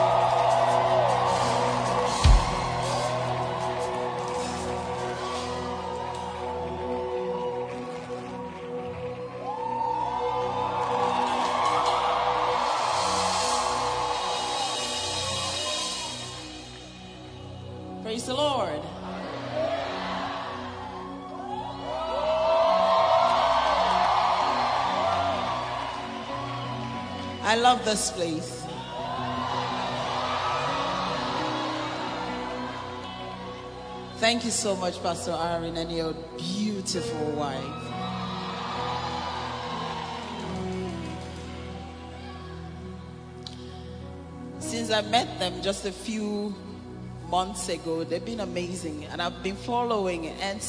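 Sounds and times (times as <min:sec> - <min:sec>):
large audience shouting and cheering: 0:00.0 - 0:18.0, 0:18.9 - 0:34.2, 0:37.6 - 0:43.5
speech: 0:18.2 - 0:18.9, 0:27.6 - 0:28.6, 0:34.2 - 0:37.9, 0:45.0 - 0:46.7, 0:47.3 - 0:50.6.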